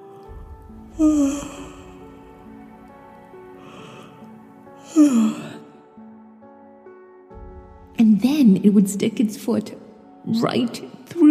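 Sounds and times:
storyteller imitating a bird stretching and yawning: 0.9 - 2.1, 4.8 - 5.8
speech: 1.0 - 1.6, 8.7 - 11.2.

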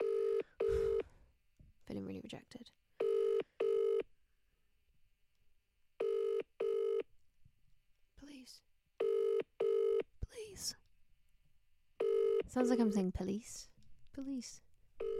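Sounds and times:
outgoing phone call ring tone: 0.0 - 1.0, 3.0 - 4.0, 6.0 - 7.1, 9.0 - 10.0, 12.0 - 12.8, 15.0 - 15.1
speech: 2.1 - 2.8, 12.6 - 14.7.

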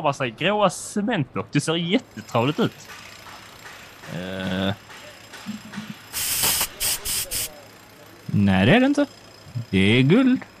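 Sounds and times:
speech: 0.0 - 3.0, 4.1 - 4.8, 8.4 - 10.5
spray can hissing as paint is sprayed over grey cement blocks: 6.1 - 7.6.

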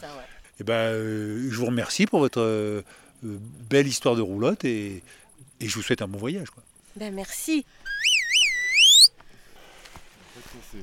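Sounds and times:
speech: 0.0 - 7.8
small copper dog-training whistle blown: 7.9 - 9.1.

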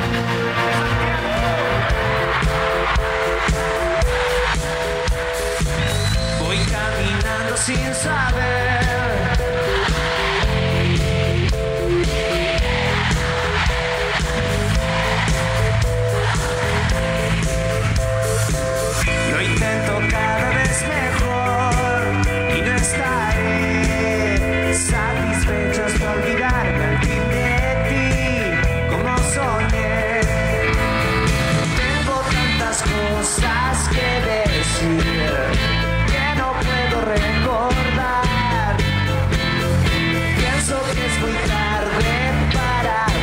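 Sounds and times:
pop-rock song with full band: 0.0 - 43.2.

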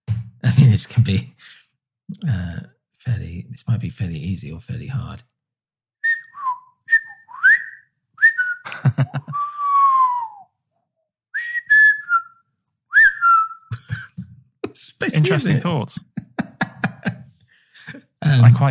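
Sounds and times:
speech: 0.4 - 5.3, 9.0 - 9.3, 15.0 - 16.2, 18.3 - 18.6
person whistling chirpy warbling beeps imitating a robot droid: 6.1 - 8.6, 9.4 - 10.4, 11.4 - 12.3, 13.0 - 13.7
laughter: 8.6 - 9.5, 13.7 - 18.6.

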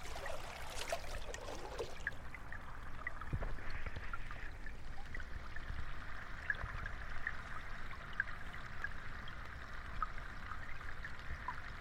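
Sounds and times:
ocean water of the East Australian Current washing: 0.0 - 2.8
ocean water splashing: 0.0 - 4.7
faint scattered crackles: 0.0 - 11.7.

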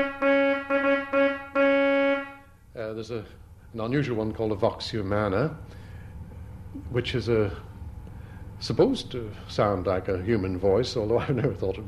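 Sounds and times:
pipe organ trumpet reed stop playing short repeated notes: 0.0 - 2.4
speech: 3.0 - 5.8, 6.8 - 7.7, 8.6 - 11.8.

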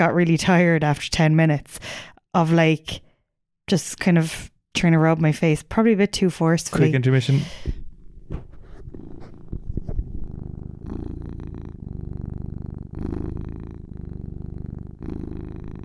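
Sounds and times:
speech: 0.0 - 3.0, 3.7 - 9.2
cat purring loudly on a person's lap: 7.4 - 15.8
rustling bumps: 7.7 - 10.3.

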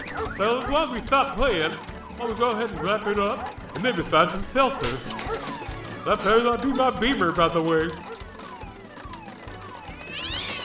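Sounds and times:
speech: 0.4 - 8.1
cat meowing in drawn-out gliding cries and a wail: 10.0 - 10.6.

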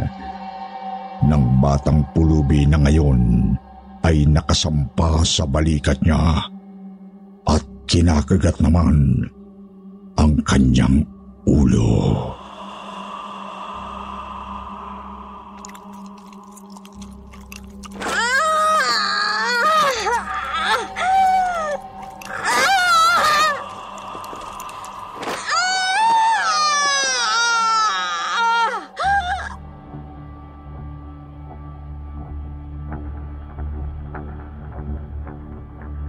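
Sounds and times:
speech: 1.2 - 6.5, 7.4 - 9.4, 10.2 - 12.4
woman screaming late at night: 18.0 - 29.6.

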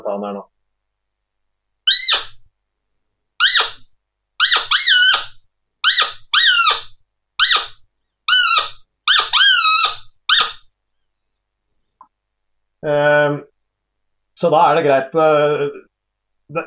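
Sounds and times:
speech: 0.1 - 0.6, 12.8 - 13.5, 14.4 - 15.9, 16.5 - 16.6
hunting lure call with high squealing note ending in a crack: 1.9 - 2.4, 3.4 - 10.7.

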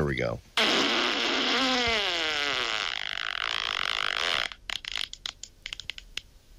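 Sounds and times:
speech: 0.0 - 0.6
long loud wet fart: 0.6 - 5.2.

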